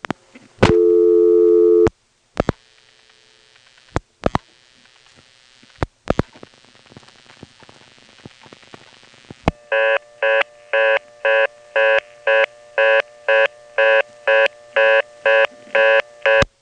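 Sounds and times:
telephone reorder tone after dialing 311 through a tandem exchange: 0:00.6 - 0:01.9, 0:09.5 - 0:16.5.

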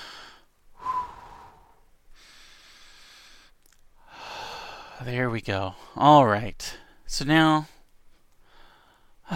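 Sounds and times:
deep breath: 0:00.0 - 0:05.0, 0:08.1 - 0:09.3
speech: 0:05.0 - 0:07.7.

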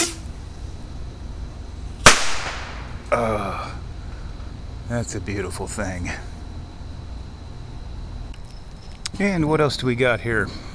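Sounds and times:
firework rocket launching with a sharp loud crack: 0:00.0 - 0:00.3, 0:02.0 - 0:03.2
firework rocket hiss: 0:00.0 - 0:00.4, 0:02.0 - 0:03.1
speech: 0:03.1 - 0:03.7, 0:04.9 - 0:06.3, 0:09.2 - 0:10.7.

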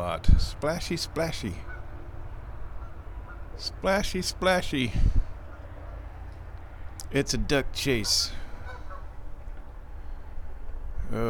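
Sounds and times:
steady low rumbling background: 0:00.0 - 0:11.2
speech: 0:00.1 - 0:01.7, 0:03.6 - 0:05.2, 0:07.1 - 0:08.4, 0:11.1 - 0:11.2
wild geese honking: 0:00.8 - 0:04.8, 0:05.4 - 0:06.7, 0:07.8 - 0:09.6.

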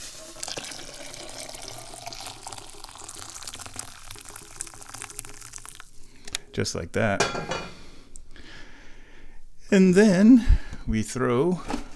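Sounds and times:
hot water pouring into a cup: 0:00.0 - 0:06.2
speech: 0:06.6 - 0:07.7, 0:09.7 - 0:11.8.

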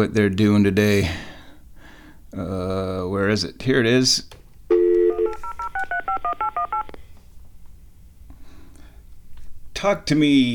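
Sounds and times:
speech: 0:00.0 - 0:01.3, 0:02.3 - 0:04.4, 0:09.8 - 0:10.5
telephone dial tone: 0:04.7 - 0:06.9.

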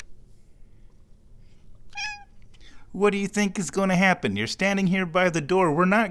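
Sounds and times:
cat meowing: 0:01.9 - 0:02.4
speech: 0:03.0 - 0:06.1.

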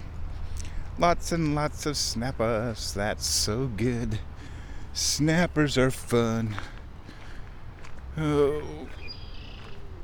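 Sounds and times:
steady outdoor hiss: 0:00.0 - 0:10.0
speech: 0:01.0 - 0:04.3, 0:05.0 - 0:06.7, 0:08.2 - 0:09.2
red-winged blackbird calling with a thin high whistle: 0:08.9 - 0:09.8.

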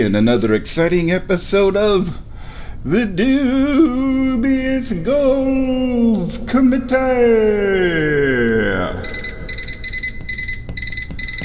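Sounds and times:
speech: 0:00.0 - 0:02.2, 0:02.8 - 0:09.1
constant hiss and low noise: 0:00.0 - 0:09.5
high-pitched electronic beeps: 0:09.0 - 0:11.4.

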